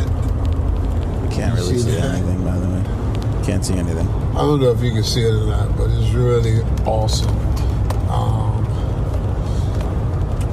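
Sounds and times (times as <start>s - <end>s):
car engine rumbling: 0.0s - 10.5s
road noise: 0.0s - 10.5s
speech: 1.6s - 8.4s.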